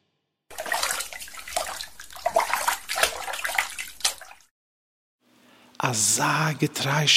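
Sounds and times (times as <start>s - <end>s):
water poured for washing hands splashing into a basin: 0.5s - 4.5s
speech: 5.8s - 7.1s.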